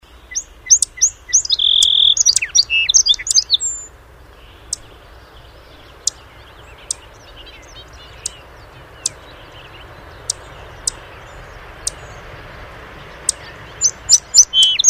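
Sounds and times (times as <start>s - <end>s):
song sparrow: 0.0s - 14.8s.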